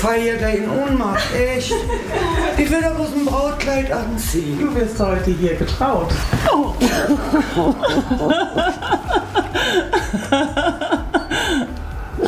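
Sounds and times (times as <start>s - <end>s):
speech: 0.0s - 10.8s
laughter: 1.0s - 3.0s, 6.2s - 12.2s
woman sniffling and crying with emotion: 6.4s - 11.8s
woman's shaky breaths: 9.4s - 10.0s, 11.3s - 12.2s.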